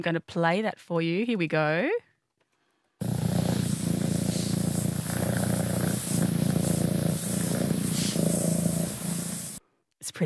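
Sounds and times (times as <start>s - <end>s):
speech: 0.0s - 2.1s, 10.1s - 10.2s
cat purring: 3.0s - 9.6s.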